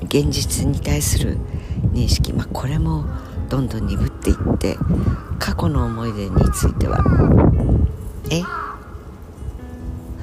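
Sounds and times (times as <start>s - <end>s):
speech: 0.1s - 8.6s
crow cawing: 4.3s - 7.4s, 8.4s - 9.0s.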